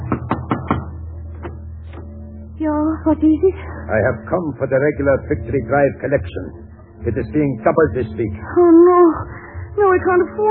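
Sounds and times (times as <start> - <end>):
knocking on the front door of a home: 0.0 - 1.6
speech: 2.6 - 10.4.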